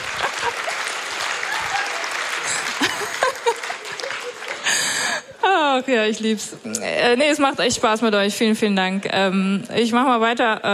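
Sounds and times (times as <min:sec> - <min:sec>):
audience applause: 0:00.0 - 0:05.4
scattered chuckles in a crowd: 0:02.4 - 0:05.3
speech: 0:05.8 - 0:10.7.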